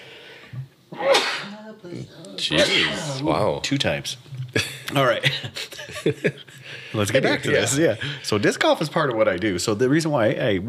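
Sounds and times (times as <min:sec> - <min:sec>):
person sneezing: 0:00.9 - 0:01.6, 0:02.5 - 0:03.2
speech: 0:01.9 - 0:10.6
laughter: 0:04.5 - 0:08.5.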